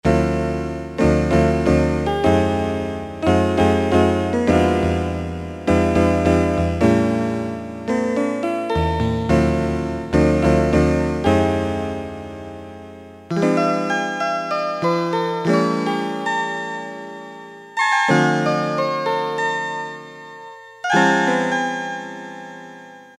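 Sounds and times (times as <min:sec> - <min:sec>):
electric piano tones: 0:00.1 - 0:23.1.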